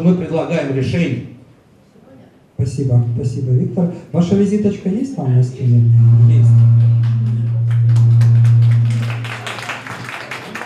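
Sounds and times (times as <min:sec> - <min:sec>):
speech: 0:00.0 - 0:01.4, 0:02.6 - 0:06.6
constant low electrical hum in a room: 0:00.0 - 0:10.6
audience applause: 0:07.6 - 0:10.6.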